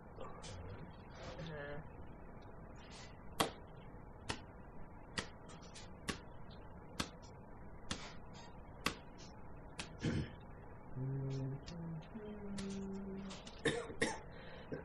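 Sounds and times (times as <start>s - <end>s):
low murmuring hum: 0.0s - 3.9s, 5.5s - 14.8s
person coughing: 10.0s - 10.4s, 13.6s - 14.8s.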